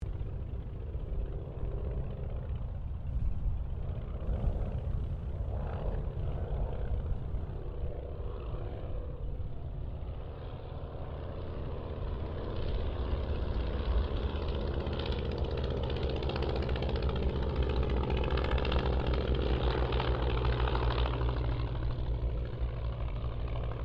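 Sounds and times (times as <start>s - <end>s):
Ryan and Auster aircraft pass of mixed aircraft squadrons: 0.0s - 23.8s.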